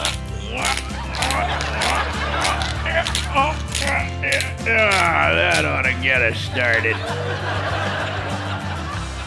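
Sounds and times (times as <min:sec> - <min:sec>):
pepper grinder cracking pepper: 0:00.0 - 0:07.0
laughter: 0:00.4 - 0:09.2
speech: 0:04.6 - 0:08.0.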